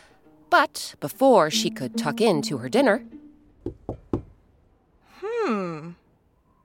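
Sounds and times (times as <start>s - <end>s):
speech: 0.5s - 3.8s
firm knocking on a wooden door: 3.6s - 4.4s.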